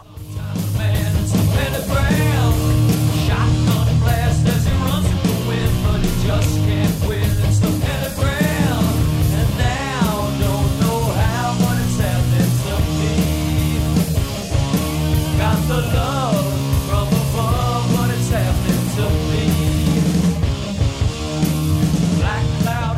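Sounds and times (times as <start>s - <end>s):
thick distorted doom metal guitars: 0.0s - 22.9s
pounding doom metal drums: 1.0s - 17.5s
wailing sliding vocal line: 4.2s - 9.5s.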